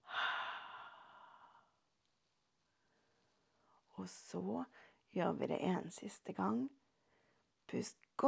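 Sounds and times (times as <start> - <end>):
long breath out through the mouth during guided breathing exercise: 0.0 - 1.7
speech: 4.0 - 6.8, 7.7 - 8.2.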